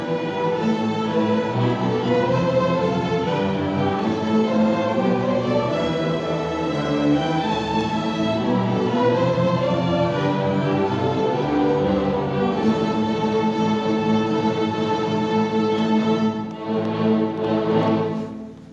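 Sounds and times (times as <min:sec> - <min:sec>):
string concert: 0:00.0 - 0:18.7.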